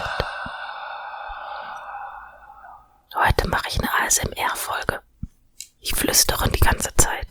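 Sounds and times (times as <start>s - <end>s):
quiet breathing into a microphone: 0.0s - 3.0s
speech: 3.4s - 5.1s, 5.8s - 7.2s.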